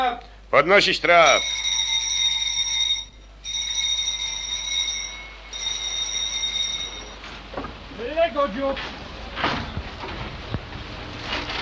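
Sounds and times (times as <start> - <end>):
speech: 0.1 - 1.6, 8.4 - 9.0
ship's maneuvering alarm ringing with a shrill electric tone as the ship casts off: 1.1 - 7.4.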